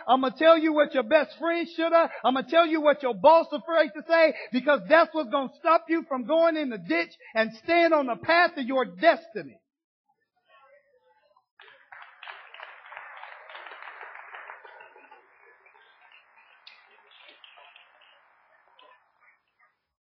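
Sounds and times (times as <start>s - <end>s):
speech: 0.0s - 9.6s
audience applause: 11.6s - 18.9s.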